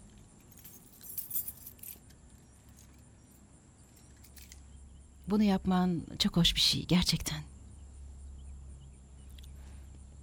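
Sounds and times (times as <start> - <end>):
keys jangling: 0.4 - 4.6
speech: 5.3 - 7.5.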